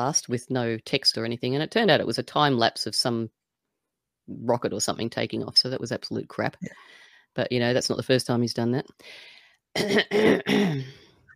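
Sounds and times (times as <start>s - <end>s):
speech: 0.0s - 3.4s, 4.3s - 11.0s
cough: 9.8s - 11.0s
throat clearing: 9.8s - 11.0s.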